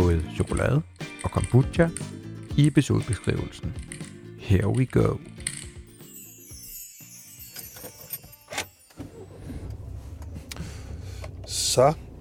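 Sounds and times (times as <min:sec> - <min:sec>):
mechanical clicks and ratcheting in a car: 0:00.0 - 0:06.0
speech: 0:00.2 - 0:03.9, 0:04.5 - 0:05.4, 0:11.8 - 0:12.0
car engine rumble: 0:08.9 - 0:12.1.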